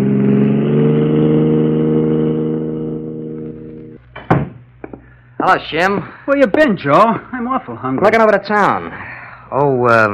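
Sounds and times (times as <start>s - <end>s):
car engine revving and pulling away: 0.0s - 4.0s
brief sharp knock: 4.2s - 5.0s
speech: 5.4s - 10.1s.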